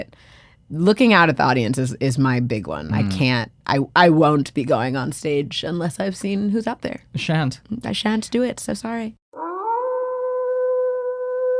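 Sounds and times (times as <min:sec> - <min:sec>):
speech: 0:00.0 - 0:09.2
distant wolf howl: 0:09.4 - 0:11.5.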